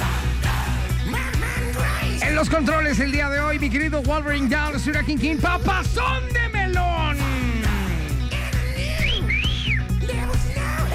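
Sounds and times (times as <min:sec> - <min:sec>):
steady loud musical backing: 0:00.0 - 0:10.9
speech: 0:02.4 - 0:07.3
person whistling a short wavering tune: 0:08.9 - 0:10.0.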